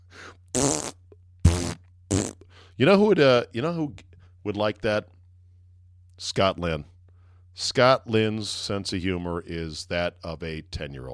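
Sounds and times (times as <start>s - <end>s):
wet buzzing raspy fart sounds: 0.5s - 2.4s
speech: 2.8s - 5.2s, 6.2s - 6.9s, 7.6s - 11.1s.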